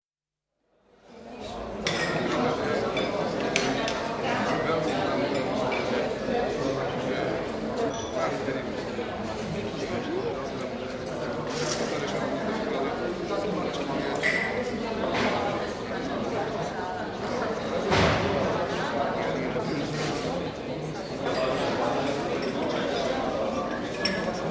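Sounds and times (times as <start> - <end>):
open-air restaurant ambience in Bratislava: 0.5 - 24.4.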